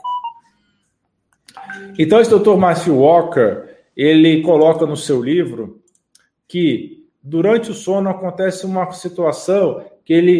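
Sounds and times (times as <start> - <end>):
short electronic mobile phone beeps: 0.0 - 0.5, 1.5 - 2.4
bright notification chime: 1.5 - 2.5
speech: 1.6 - 5.8, 6.5 - 10.3
click: 5.9 - 6.3.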